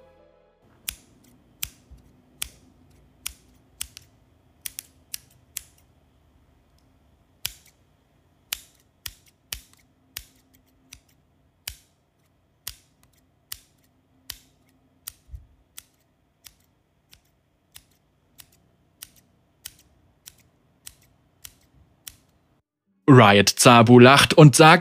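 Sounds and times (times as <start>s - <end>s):
cheap one-dollar store scissors snipping and clicking: 0.7s - 5.9s, 7.4s - 7.8s, 8.5s - 22.3s
speech: 23.1s - 24.7s.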